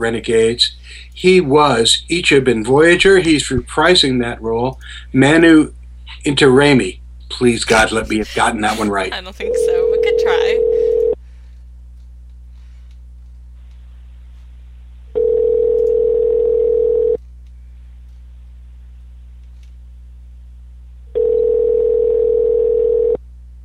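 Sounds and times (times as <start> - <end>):
speech: 0.0 - 10.6
telephone ringback tone during a call: 9.5 - 11.2, 15.2 - 17.2, 21.2 - 23.2.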